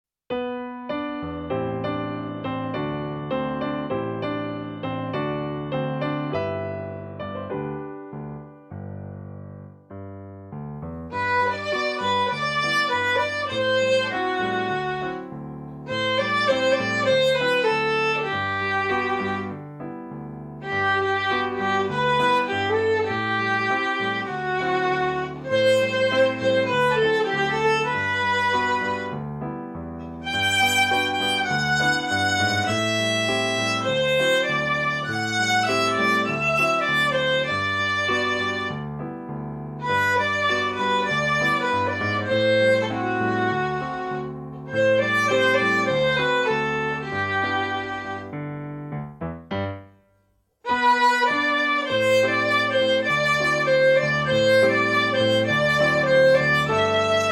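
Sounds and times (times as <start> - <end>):
piano playing: 0.3 - 57.3
beginner violin playing: 11.1 - 20.0, 20.6 - 29.3, 30.1 - 38.9, 39.8 - 48.5, 50.6 - 57.3.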